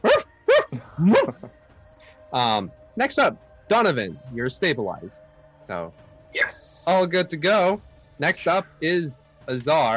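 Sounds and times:
dog barking: 0.0 - 1.4
speech: 1.0 - 1.6, 2.3 - 9.9.

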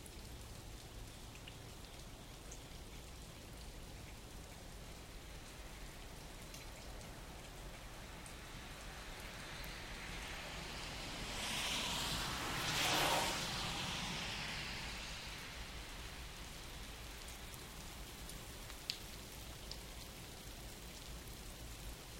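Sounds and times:
steady morning rain pattering on surfaces: 0.0 - 22.1
car passing: 8.4 - 17.0.

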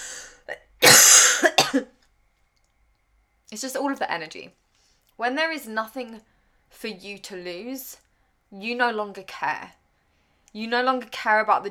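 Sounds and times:
person coughing: 0.0 - 1.8
speech: 3.5 - 4.6, 5.2 - 9.8, 10.5 - 11.6.

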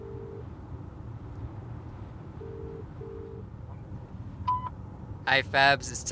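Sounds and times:
phone ringing tone through a handset: 0.0 - 0.5, 2.4 - 3.4
constant low engine-like rumble: 0.0 - 6.1
speech: 5.3 - 6.1.

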